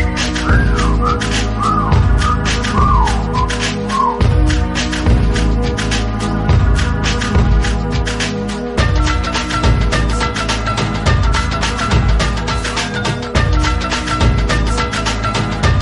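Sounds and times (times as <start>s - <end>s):
person whistling a catcall: 0.0s - 4.3s
heavy hip-hop beat with crisp hi-hats: 0.0s - 15.7s.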